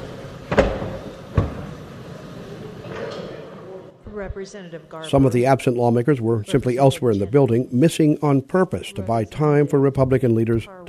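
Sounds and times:
low murmur of voices in a large room: 0:00.0 - 0:04.0, 0:05.0 - 0:10.8
heavy chamber door thuds closing and latching: 0:00.5 - 0:01.8
speech: 0:04.2 - 0:10.8.

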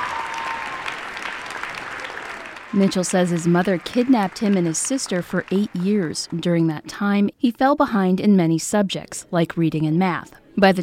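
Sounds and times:
enthusiastic applause at a high school graduation ceremony: 0:00.0 - 0:06.4
speech: 0:02.7 - 0:10.8.

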